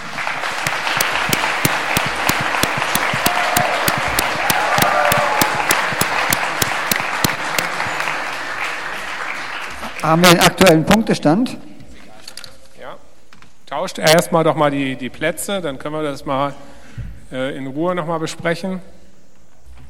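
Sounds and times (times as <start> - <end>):
audience applauding: 0.0 - 10.6
speech: 10.0 - 11.7, 13.8 - 16.7, 17.3 - 19.0.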